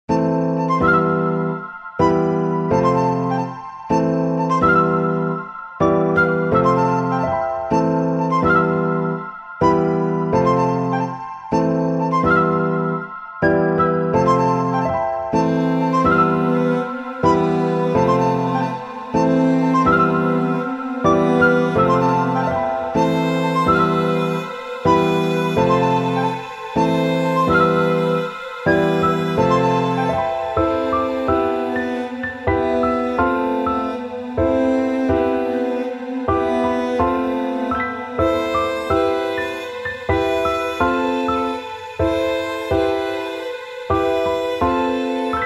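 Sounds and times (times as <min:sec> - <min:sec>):
flute: 0:00.0 - 0:45.4
piano: 0:00.0 - 0:45.4
strings: 0:00.2 - 0:45.4.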